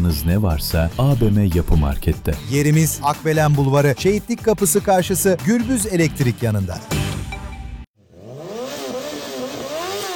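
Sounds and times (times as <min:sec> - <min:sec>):
speech: 0:00.0 - 0:07.2
motorcycle engine revving: 0:08.0 - 0:10.1.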